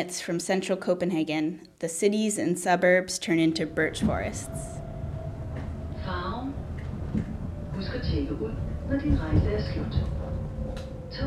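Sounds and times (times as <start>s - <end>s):
speech: 0.0s - 4.8s, 7.8s - 10.2s
low rumble from inside a moving train: 3.1s - 11.2s
constant electric hum inside a moving train: 3.2s - 11.2s
voices murmuring: 3.4s - 4.8s, 5.6s - 10.3s.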